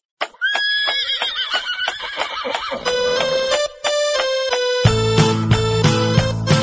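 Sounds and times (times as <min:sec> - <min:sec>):
horse hooves clopping: 0:00.2 - 0:06.4
horse whinny and neigh: 0:00.4 - 0:03.0.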